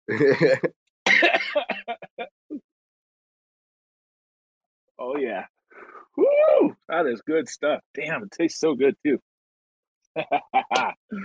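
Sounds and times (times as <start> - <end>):
speech: 0.1 - 0.8, 5.0 - 5.5, 6.2 - 9.3, 10.2 - 11.2
person coughing after taking a dab: 0.1 - 2.0
laughter: 0.1 - 2.3, 10.2 - 11.0.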